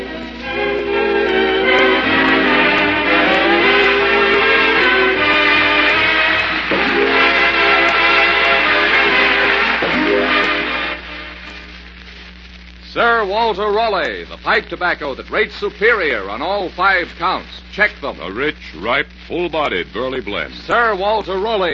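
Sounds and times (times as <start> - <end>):
train rolling: 0.0 - 10.7
speech: 13.3 - 21.7.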